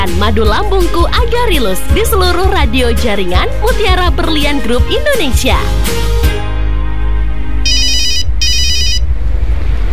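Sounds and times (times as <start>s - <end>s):
speech: 0.0s - 6.3s
steady low hum: 6.3s - 9.9s
telephone ringing in electronic bursts: 7.7s - 9.0s.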